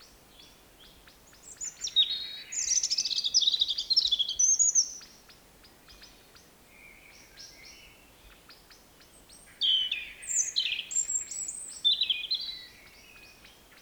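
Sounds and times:
European robin Erithacus rubecula singing: 0.4 - 13.8.

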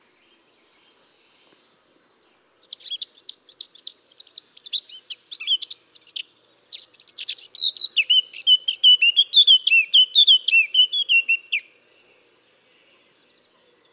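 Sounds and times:
Eurasian blackcap Sylvia atricapilla warbling song: 2.6 - 11.6.

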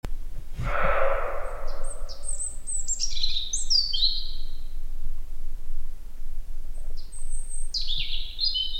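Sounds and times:
rushing noise: 0.6 - 2.8
continuous low-pitched rumble: 0.6 - 2.9
European robin singing high thin trilling phrases: 0.8 - 4.6, 7.0 - 8.7.

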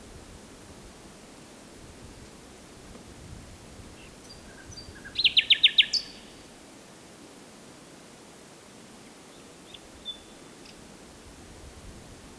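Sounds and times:
common nightingale Luscinia megarhynchos whistled notes: 4.3 - 6.3, 9.3 - 10.5.

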